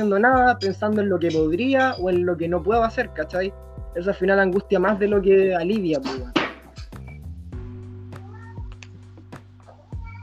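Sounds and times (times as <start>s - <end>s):
speech: 0.0s - 6.4s
cat meowing: 8.2s - 8.8s, 9.8s - 10.2s.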